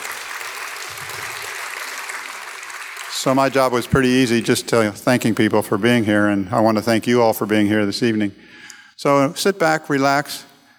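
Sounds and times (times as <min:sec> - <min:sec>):
audience applause: 0:00.0 - 0:04.9
speech: 0:03.2 - 0:10.5.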